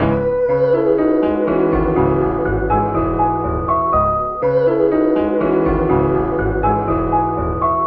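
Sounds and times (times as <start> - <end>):
voice in a sad loop: 0.0 - 2.2, 4.4 - 6.1
sad piano loop: 0.0 - 7.8.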